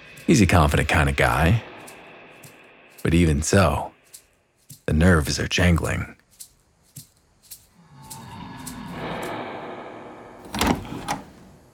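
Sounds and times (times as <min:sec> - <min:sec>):
speech: 0:00.3 - 0:01.7, 0:03.0 - 0:03.9, 0:04.9 - 0:06.2
living room door handle clicks: 0:10.4 - 0:11.6.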